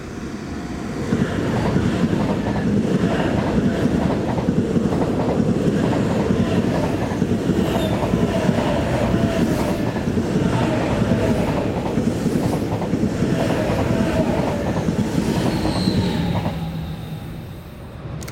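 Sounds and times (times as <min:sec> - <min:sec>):
ICE high-speed train passing by close: 0:00.0 - 0:18.3
faint metallic squeals from the train: 0:15.4 - 0:17.6.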